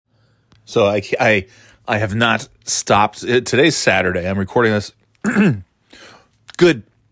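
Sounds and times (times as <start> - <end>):
speech: 0.7 - 6.0, 6.6 - 6.9
person clearing throat: 5.2 - 5.7.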